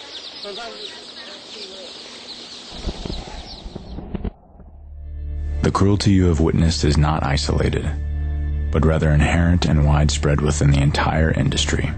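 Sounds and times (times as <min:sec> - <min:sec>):
many chicks peeping shrilly while being sorted: 0:00.0 - 0:04.1
speech: 0:00.4 - 0:02.9, 0:05.6 - 0:08.1, 0:08.7 - 0:11.9.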